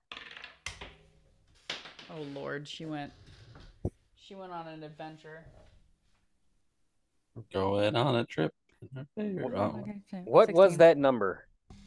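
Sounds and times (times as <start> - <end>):
dice clattering onto a hard surface: 0.1 - 1.0
speech: 2.1 - 3.2, 4.3 - 5.7, 7.4 - 11.5.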